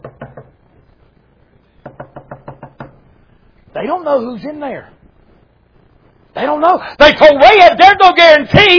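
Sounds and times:
knocking on a door: 0:00.0 - 0:00.6, 0:01.8 - 0:03.0
speech: 0:03.7 - 0:05.0, 0:06.4 - 0:08.7.

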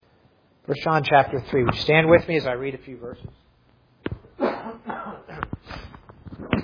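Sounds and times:
speech: 0:00.7 - 0:03.4
rough coughs: 0:04.3 - 0:05.9.

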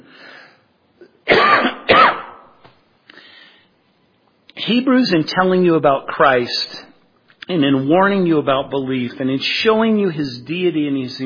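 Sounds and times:
man clearing throat: 0:01.0 - 0:02.5
man coughing: 0:01.0 - 0:02.5
speech: 0:04.7 - 0:06.9, 0:07.5 - 0:11.2.

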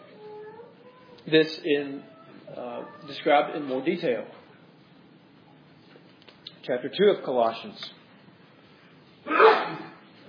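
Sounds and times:
speech: 0:01.2 - 0:04.4, 0:06.6 - 0:08.0
single sharp sneeze: 0:09.2 - 0:10.1.

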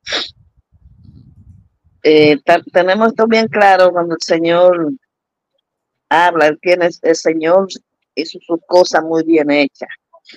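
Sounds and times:
loud sneeze: 0:00.1 - 0:00.4
low rumbling: 0:00.2 - 0:03.8
speech: 0:02.0 - 0:05.0, 0:06.1 - 0:10.3.

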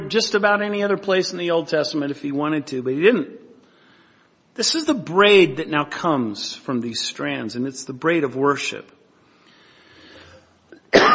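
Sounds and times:
faint room noise: 0:00.0 - 0:11.1
speech: 0:00.1 - 0:03.4, 0:04.6 - 0:09.0
person coughing: 0:10.8 - 0:11.1.

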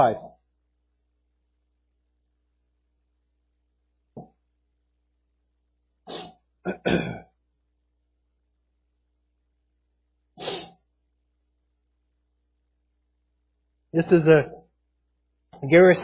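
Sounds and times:
speech: 0:00.0 - 0:00.3, 0:06.1 - 0:07.2, 0:14.0 - 0:14.6, 0:15.6 - 0:16.0
preacher clearing his throat from a tickle: 0:06.7 - 0:07.3.

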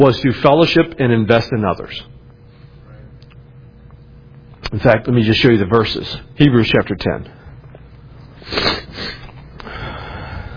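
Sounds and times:
speech: 0:00.0 - 0:02.2, 0:04.7 - 0:07.4, 0:08.4 - 0:09.2
wet nasal sniffing with a cold: 0:08.4 - 0:09.4.

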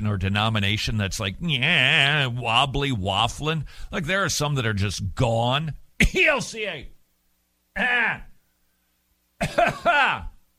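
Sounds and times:
speech: 0:00.0 - 0:07.0, 0:07.8 - 0:08.3, 0:09.4 - 0:10.3
person clearing throat: 0:09.4 - 0:10.4
person coughing harshly: 0:09.4 - 0:10.4.

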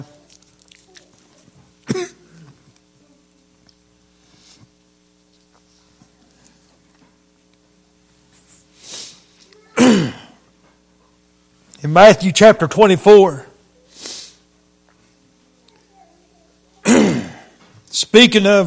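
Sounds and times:
faint steady hum: 0:00.0 - 0:18.6
man preaching a sermon coughing and clearing his throat: 0:01.8 - 0:02.6, 0:09.8 - 0:10.4, 0:16.8 - 0:17.6
man preaching a sermon: 0:11.8 - 0:13.5, 0:17.9 - 0:18.6
speech: 0:11.8 - 0:13.5, 0:18.2 - 0:18.6.

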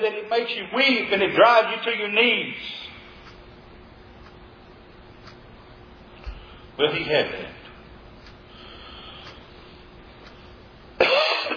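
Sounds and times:
speech: 0:00.0 - 0:02.9, 0:06.8 - 0:07.4
sharp cough with raspy throat-clearing tail: 0:11.0 - 0:11.5.

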